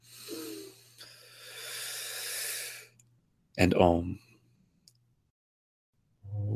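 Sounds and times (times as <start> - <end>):
group taking a deep inhale together in a meditation class: 0.0 - 3.0
speech: 3.6 - 4.2.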